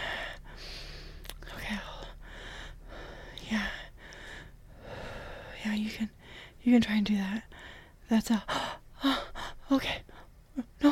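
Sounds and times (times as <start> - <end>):
heavy rough breathing: 0.0 - 1.3, 2.0 - 5.6, 6.2 - 6.6, 7.5 - 10.3
speech: 5.6 - 7.5, 8.1 - 10.0.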